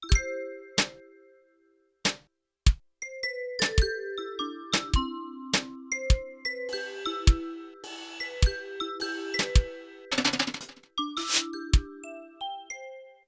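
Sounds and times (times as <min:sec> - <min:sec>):
drums from a sampler jazz performance: 0:00.0 - 0:01.0, 0:02.1 - 0:02.9, 0:03.6 - 0:04.0, 0:04.7 - 0:11.9
vibraphone from a sampler jazz performance: 0:00.0 - 0:01.7, 0:03.0 - 0:13.2.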